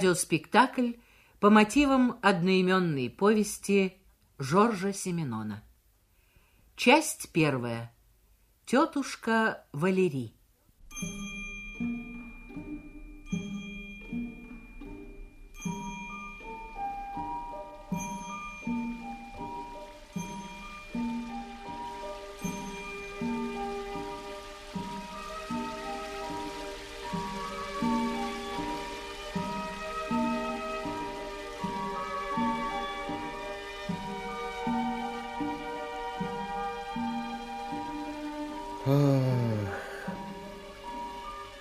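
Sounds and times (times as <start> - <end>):
speech: 0.0 - 5.7, 6.8 - 8.0, 8.7 - 10.4, 11.0 - 11.4
ringing chime-like tones: 10.8 - 34.1
rain pattering: 15.3 - 41.6.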